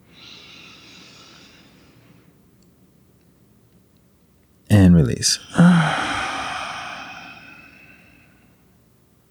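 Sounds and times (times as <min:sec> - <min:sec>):
long deep inhale through the nose in a guided breathing exercise: 0:00.0 - 0:02.3, 0:05.6 - 0:08.6
speech: 0:04.8 - 0:06.2.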